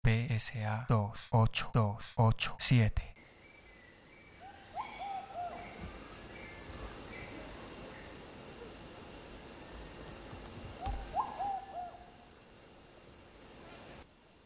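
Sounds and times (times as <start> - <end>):
speech: 0.3 - 3.4
high-pitched insect drone: 3.2 - 14.4
doves calling with soft hollow hooting notes: 3.3 - 9.1, 9.7 - 12.4.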